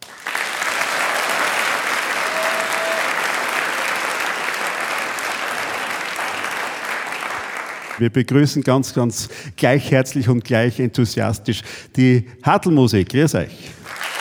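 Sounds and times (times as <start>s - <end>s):
large audience applause: 0.0s - 8.0s, 13.8s - 14.1s
speech: 8.0s - 14.0s.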